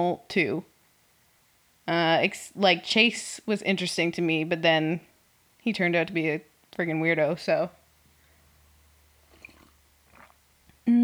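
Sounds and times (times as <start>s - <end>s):
speech: 0.0s - 0.7s, 1.9s - 7.8s
wet mouth noises of swallowing: 9.3s - 10.4s.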